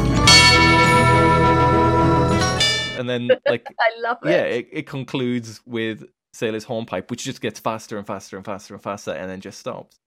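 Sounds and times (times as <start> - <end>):
dense droning music with slightly distorted electric guitars: 0.0 - 3.0
single loud tubular bell strike: 0.2 - 3.0
speech: 3.1 - 10.0.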